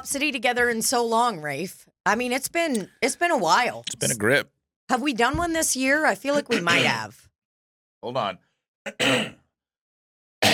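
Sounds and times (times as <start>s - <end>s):
speech: 0.0s - 7.3s, 8.0s - 9.4s
man clearing his throat: 8.9s - 9.4s.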